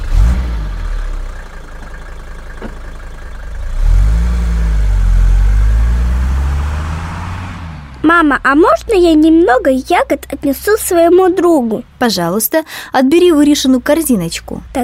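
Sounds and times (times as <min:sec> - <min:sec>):
car engine idling then revving and accelerating away: 0:00.0 - 0:01.4, 0:03.5 - 0:08.0
speech: 0:08.1 - 0:14.8.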